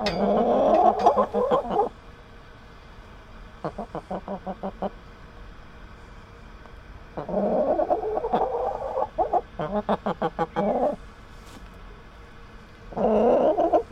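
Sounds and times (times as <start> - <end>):
caged chickens clucking: 0.0 - 1.9, 3.6 - 5.0, 7.1 - 11.0, 12.9 - 13.9.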